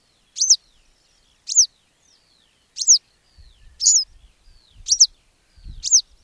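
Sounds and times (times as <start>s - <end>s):
western yellow wagtail calls: 0.0s - 0.8s, 1.4s - 4.1s, 4.8s - 6.2s
faint softer background chirps: 0.0s - 6.2s.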